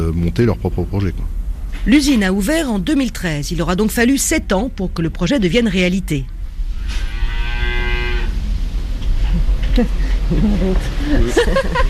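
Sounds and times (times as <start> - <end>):
steady low rumble in a barn: 0.0 - 11.8
speech: 0.1 - 7.1, 9.8 - 11.8
dairy cow mooing on a farm: 6.9 - 8.4
laughter: 10.2 - 11.8.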